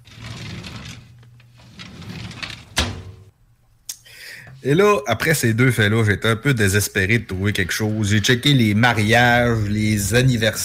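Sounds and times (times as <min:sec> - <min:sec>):
drawer sliding open with a rumbling scrape: 0:00.0 - 0:03.3
speech: 0:04.6 - 0:10.6.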